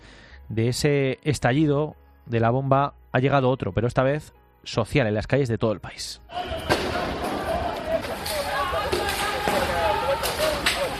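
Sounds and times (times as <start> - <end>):
speech: 0.5 - 6.7
crowd shouting at a night-time street protest in Lebanon: 6.3 - 10.9.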